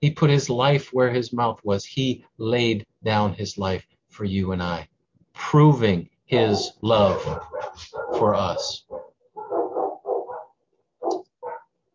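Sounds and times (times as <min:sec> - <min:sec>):
speech: 0:00.0 - 0:08.9
dog barking: 0:06.4 - 0:11.7.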